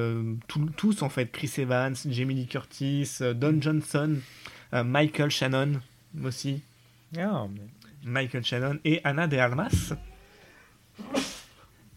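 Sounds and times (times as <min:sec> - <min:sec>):
speech: 0:00.0 - 0:10.1
faint hum: 0:00.0 - 0:11.9
person sneezing: 0:11.0 - 0:11.6.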